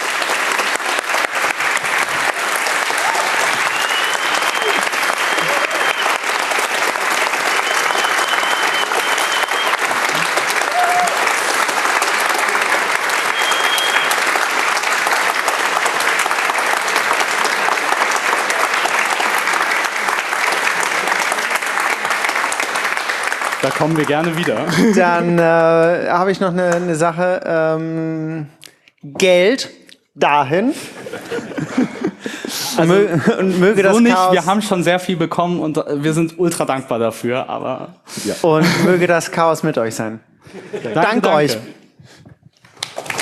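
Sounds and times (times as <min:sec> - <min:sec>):
sustained audience applause: 0:00.0 - 0:25.4, 0:33.8 - 0:34.4, 0:42.6 - 0:43.2
laughter: 0:04.6 - 0:06.0, 0:24.4 - 0:25.4, 0:30.8 - 0:34.4, 0:38.5 - 0:39.1, 0:40.4 - 0:41.8
speech: 0:23.8 - 0:28.6, 0:29.2 - 0:31.4, 0:32.8 - 0:41.8.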